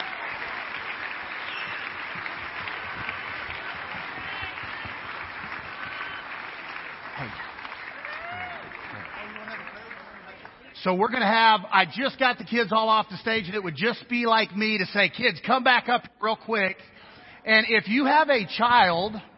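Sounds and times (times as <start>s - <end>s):
scattered cheers: 0.0s - 9.4s
applause from a large church audience: 0.0s - 10.8s
speech: 10.8s - 19.3s.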